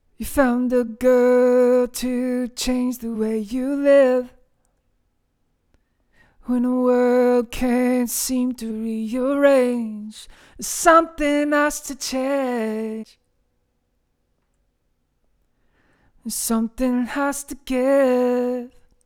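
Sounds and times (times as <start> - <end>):
vocal: 0.2 - 4.4, 6.4 - 13.2, 16.2 - 18.9.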